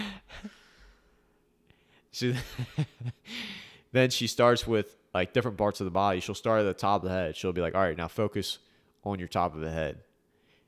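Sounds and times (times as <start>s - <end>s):
exaggerated heavy breathing: 0.0s - 2.1s, 3.2s - 3.9s
speech: 2.2s - 10.1s.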